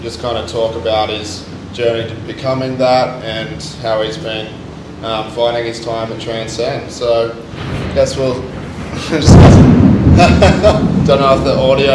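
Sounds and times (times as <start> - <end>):
speech: 0.0 - 11.9
thunder rumbling from a storm outside: 7.5 - 11.9
person laughing: 9.0 - 9.4, 10.1 - 11.0.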